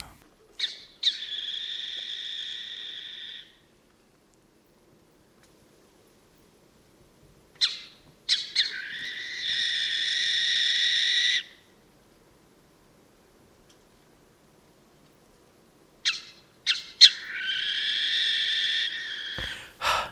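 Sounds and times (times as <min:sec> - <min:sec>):
owl screeching agitatedly: 0:00.6 - 0:03.6, 0:07.6 - 0:11.6, 0:16.1 - 0:19.4.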